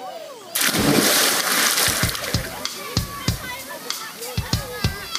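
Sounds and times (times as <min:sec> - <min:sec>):
loud splash of someone jumping into water: 0:00.6 - 0:04.1
water sloshing and spattering: 0:00.6 - 0:05.1.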